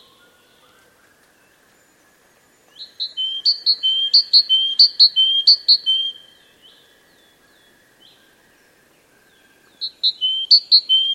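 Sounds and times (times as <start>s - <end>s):
great tit calling with whistled notes: 2.7s - 6.3s, 9.8s - 11.1s
speech: 3.5s - 6.9s.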